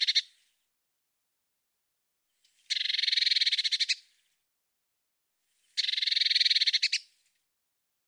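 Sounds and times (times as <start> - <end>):
Eurasian blue tit scolding with buzzy notes and churring rattle: 0.0 - 0.2, 2.7 - 4.0, 5.8 - 7.0.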